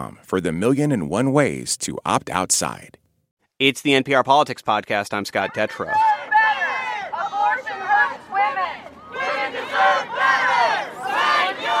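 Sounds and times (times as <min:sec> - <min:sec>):
speech: 0:00.0 - 0:03.0, 0:03.6 - 0:06.6
protest crowd shouting and chanting outside the Supreme Court in Washington, D.C.: 0:05.2 - 0:11.7.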